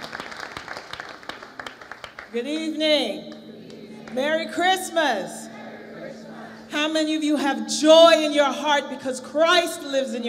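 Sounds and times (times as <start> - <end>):
audience applauding a soloist: 0.0 - 2.3
speech: 2.3 - 3.4, 4.1 - 5.4, 6.7 - 10.2.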